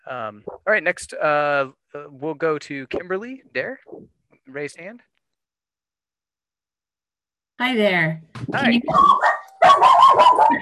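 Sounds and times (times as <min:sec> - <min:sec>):
speech: 0:00.1 - 0:05.1, 0:07.6 - 0:10.5
dogs barking: 0:08.8 - 0:10.5.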